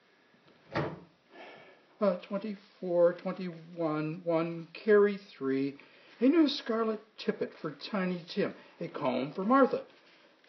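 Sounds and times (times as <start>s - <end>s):
door being pushed shut: 0.7s - 1.1s
speech: 2.0s - 10.0s.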